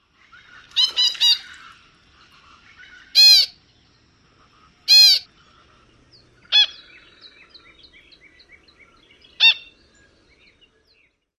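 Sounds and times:
least grebe nasal calls: 0.2s - 3.6s, 4.4s - 9.8s.

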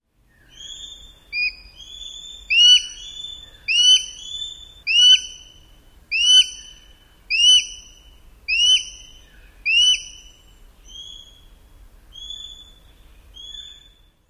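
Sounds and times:
Sharp-shinned Hawk squealing calls: 2.5s - 5.4s, 6.1s - 6.7s, 7.3s - 7.9s, 8.5s - 9.1s, 9.7s - 10.2s.

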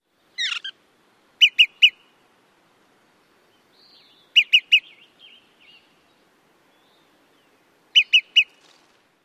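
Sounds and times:
olive-sided flycatcher pit-pit-pit calls: 0.3s - 0.8s, 1.4s - 2.1s, 3.5s - 8.8s.

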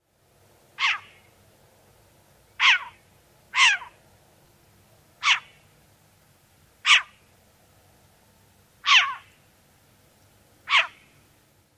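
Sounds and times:
Short-eared Owl barking: 0.8s - 1.3s, 2.6s - 4.0s, 5.2s - 5.6s, 6.8s - 7.3s, 8.8s - 9.4s, 10.6s - 11.2s.

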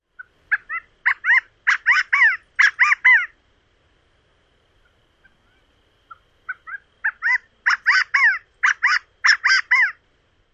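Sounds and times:
California Quail song: 0.1s - 3.4s, 4.8s - 10.0s.

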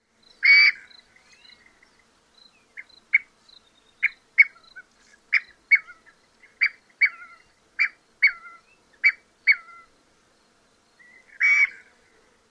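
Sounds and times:
scaled quail calling: 0.4s - 0.9s, 4.0s - 9.9s, 11.0s - 11.9s.

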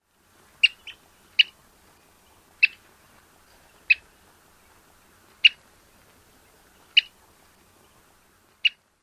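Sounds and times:
Wilson's plover chirp calls: 0.6s - 1.6s, 2.6s - 2.8s, 6.9s - 7.1s.

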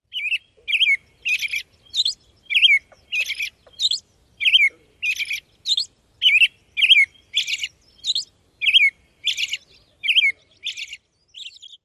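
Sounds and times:
American Robin dawn song: 0.0s - 11.8s.

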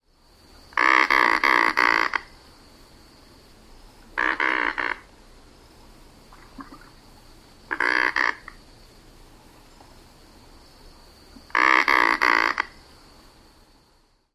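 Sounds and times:
adult croaking: 0.7s - 2.4s, 4.1s - 5.1s, 6.3s - 7.0s, 7.7s - 8.6s, 11.3s - 12.8s.

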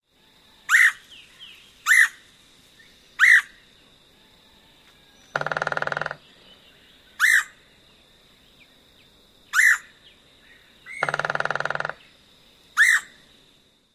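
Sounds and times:
Red-headed Woodpecker querr calls: 0.7s - 1.1s, 1.8s - 2.2s, 3.2s - 3.6s, 5.2s - 6.5s, 7.1s - 7.6s, 9.5s - 12.2s, 12.8s - 13.2s
Red-headed Woodpecker drumming: 5.3s - 6.3s, 10.9s - 12.2s.

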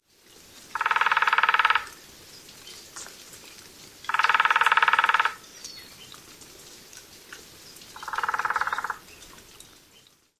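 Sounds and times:
Nuttall's woodpecker drumming: 0.7s - 2.0s, 4.1s - 5.4s, 8.0s - 9.0s.

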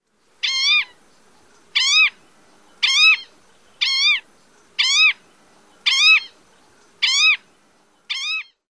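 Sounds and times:
Green-tailed Towhee calling: 0.4s - 8.6s.

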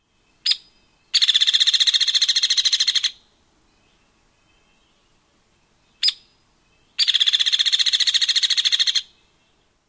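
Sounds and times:
hairy woodpecker tweeks and sputters: 0.4s - 3.2s, 6.0s - 9.2s.

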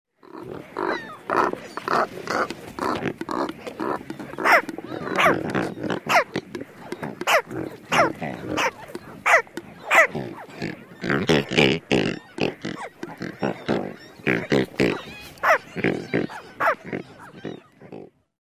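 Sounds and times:
adult bird croaks: 0.2s - 18.2s
nestlings barking: 2.3s - 11.5s, 12.2s - 17.7s.

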